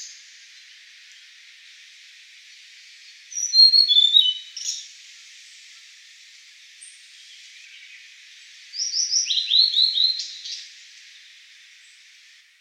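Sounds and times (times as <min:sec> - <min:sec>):
background hiss: 0:00.0 - 0:12.5
blue-and-white flycatcher whistled song: 0:03.3 - 0:04.8, 0:08.7 - 0:10.6.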